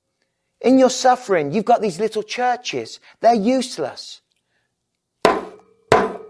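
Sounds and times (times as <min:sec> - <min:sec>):
speech: 0:00.6 - 0:04.2
hammer blows with metallic ringing: 0:05.3 - 0:06.2.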